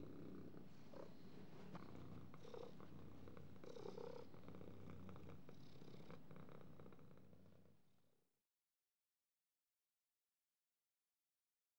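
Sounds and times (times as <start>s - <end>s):
cat purring: 0.0s - 7.8s.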